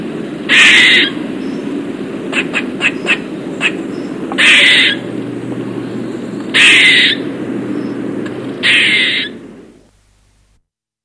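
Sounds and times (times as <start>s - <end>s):
steady low hum: 0.0s - 10.6s
Eastern gray squirrel giving harsh raspy calls: 0.5s - 1.7s, 2.3s - 5.2s, 6.5s - 7.9s, 8.6s - 9.4s.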